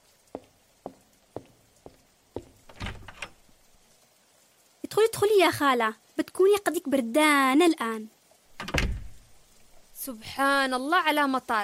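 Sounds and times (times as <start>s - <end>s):
door being opened with a clatter and rustle: 2.6s - 3.4s, 8.6s - 9.2s
speech: 5.1s - 8.2s, 10.0s - 11.6s.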